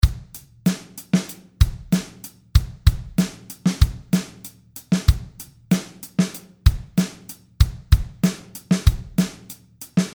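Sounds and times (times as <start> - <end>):
hip-hop drum beat: 0.0 - 10.1.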